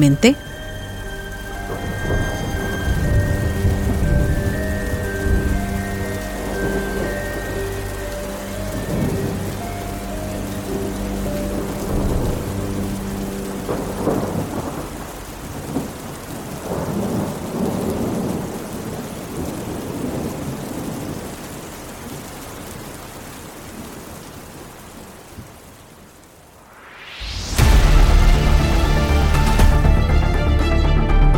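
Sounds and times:
speech: 0.0s - 0.5s
steady rain: 0.0s - 31.3s
deep rolling thunder: 0.4s - 21.7s.

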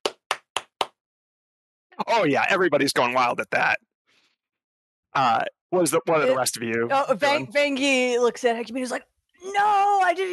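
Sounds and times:
hands clapping: 0.0s - 1.0s
speech: 2.0s - 3.9s, 5.2s - 10.3s.

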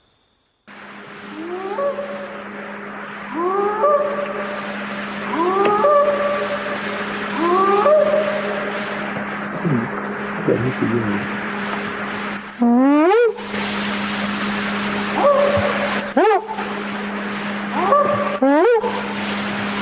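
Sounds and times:
low hum and hiss: 0.0s - 19.8s
rising whooping calls of an unidentified creature in a forest: 1.3s - 10.0s, 15.0s - 16.7s, 17.6s - 19.2s
speech: 10.7s - 11.4s, 12.6s - 12.8s.

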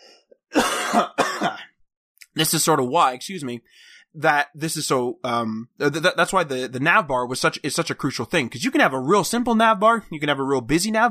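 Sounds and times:
harsh coughs: 0.5s - 1.8s
speech: 0.9s - 1.2s, 2.4s - 11.0s.

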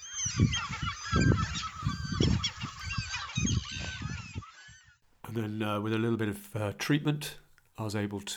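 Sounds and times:
dense flock of oystercatchers calling: 0.0s - 5.0s
speech: 0.3s - 1.7s, 5.4s - 8.3s.

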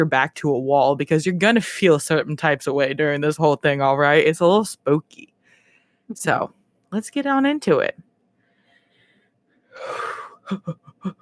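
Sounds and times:
speech: 0.0s - 5.3s, 6.1s - 8.1s, 9.8s - 11.2s
deep breath: 5.4s - 6.1s, 8.3s - 10.4s.

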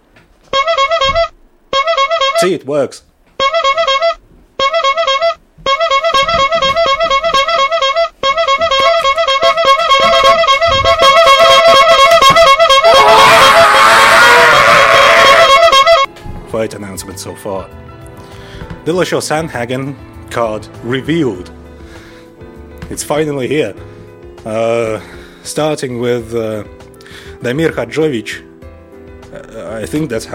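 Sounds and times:
clown horn honks: 0.5s - 2.7s, 3.4s - 16.1s
speech: 2.4s - 3.1s, 16.6s - 17.9s, 18.8s - 21.6s, 22.9s - 26.8s, 27.4s - 28.5s, 29.7s - 30.3s.

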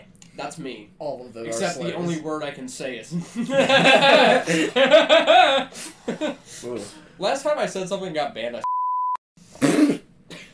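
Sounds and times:
speech: 0.4s - 8.6s
laughter: 3.1s - 6.4s
censor beep over a word: 8.6s - 9.2s
person coughing: 9.6s - 10.5s.

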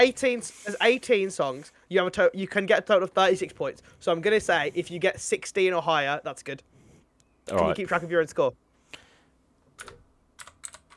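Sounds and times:
speech: 0.0s - 6.7s, 7.4s - 8.6s
typing on a computer keyboard: 9.8s - 10.9s.

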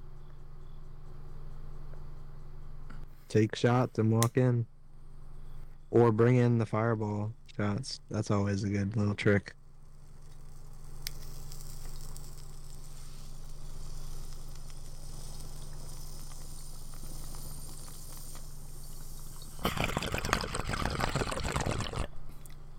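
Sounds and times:
speech: 3.3s - 4.7s, 5.9s - 9.6s
bubbling hissing rush of someone smoking a bowl: 5.0s - 22.7s.

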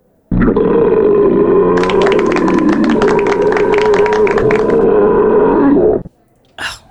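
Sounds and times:
long loud deep rumbling belch: 0.3s - 6.0s
breathy exhale: 6.6s - 6.8s.

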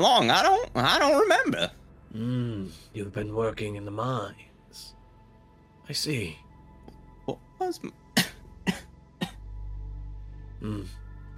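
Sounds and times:
speech: 0.0s - 5.0s, 5.9s - 6.4s, 7.3s - 8.0s, 10.6s - 11.0s
low steady hum: 0.0s - 11.3s
person coughing harshly: 8.2s - 9.4s.

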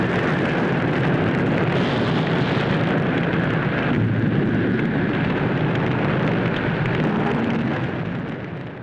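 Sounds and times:
forest fire roaring in a fire-prevention ad: 0.0s - 8.8s.

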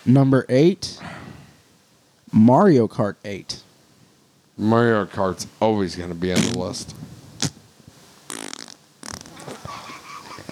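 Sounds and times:
speech: 0.0s - 1.1s, 2.3s - 3.6s, 4.6s - 7.2s
loud raspy fart noises: 6.3s - 6.8s, 7.4s - 7.6s, 8.3s - 10.5s.

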